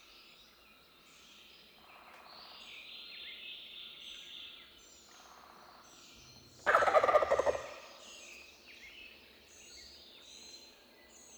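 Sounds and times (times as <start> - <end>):
Meleagris gallopavo wild turkey gobble: 6.7 - 8.0.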